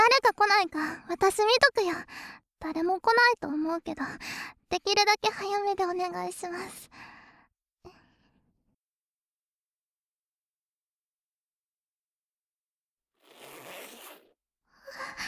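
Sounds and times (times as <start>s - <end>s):
speech: 0.3s - 7.0s
clothing zipper pulled open in raspy strokes: 13.2s - 14.4s.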